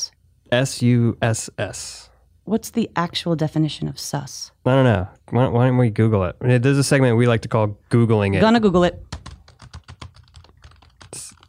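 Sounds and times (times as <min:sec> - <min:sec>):
speech: 0:00.5 - 0:09.2
rapid typing on a computer keyboard during a Google search: 0:09.1 - 0:11.4.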